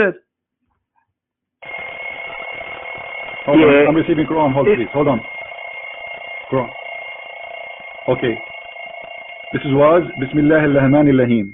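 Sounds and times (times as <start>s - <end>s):
speech: 0.0s - 0.2s, 3.4s - 5.3s, 6.5s - 6.8s, 8.0s - 8.5s, 9.5s - 11.5s
bell ringing with bright continuous jangle: 8.1s - 11.5s.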